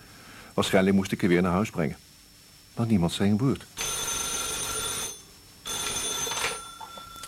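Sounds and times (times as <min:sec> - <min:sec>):
speech: 0:00.6 - 0:02.1, 0:02.8 - 0:03.8
telephone bell ringing: 0:03.8 - 0:07.2.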